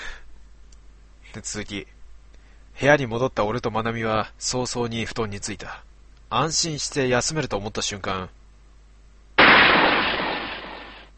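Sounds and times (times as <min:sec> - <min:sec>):
speech: 0:01.4 - 0:02.0, 0:02.8 - 0:08.4
gunshot echoing through a guesthouse: 0:09.4 - 0:11.1.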